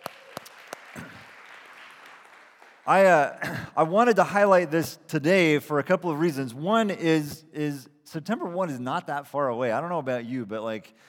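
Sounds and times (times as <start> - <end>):
audience applause for new interns: 0.0 - 3.2
speech: 2.9 - 11.0.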